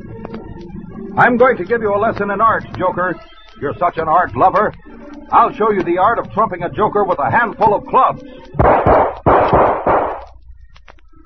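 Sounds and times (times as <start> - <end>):
speech: 1.2 - 9.6
gunshots from a gun fired during a fight: 8.6 - 10.3.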